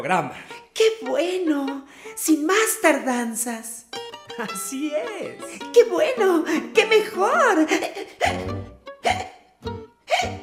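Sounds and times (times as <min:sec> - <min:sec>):
speech: 0:00.0 - 0:09.3
person hiccuping: 0:08.2 - 0:09.4, 0:10.1 - 0:10.4.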